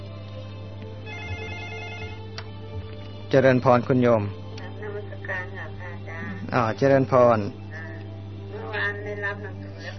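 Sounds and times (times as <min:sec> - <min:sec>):
telephone ringing with an electronic tone for an incoming call: 0:01.0 - 0:02.3
speech: 0:03.3 - 0:04.4, 0:06.5 - 0:07.6.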